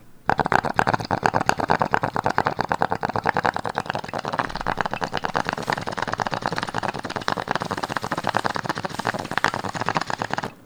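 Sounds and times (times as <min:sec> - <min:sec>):
bong: 0:00.0 - 0:10.6.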